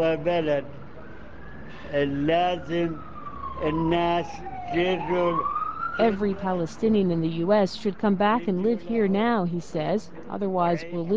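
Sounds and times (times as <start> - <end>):
speech: 0.0 - 0.8, 1.9 - 11.1
ambulance siren racing by: 0.0 - 9.1.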